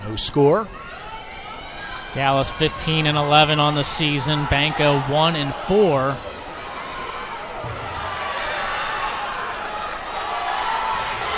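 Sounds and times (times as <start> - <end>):
large indoor crowd cheering at a wrestling match: 0.0 - 11.3
speech: 0.1 - 0.9, 2.1 - 6.3.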